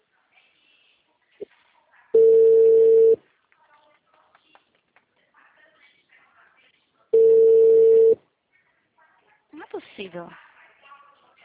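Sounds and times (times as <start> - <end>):
ringback tone of a call to a mobile phone: 2.2 - 3.2, 7.2 - 8.2
speech: 10.1 - 10.4.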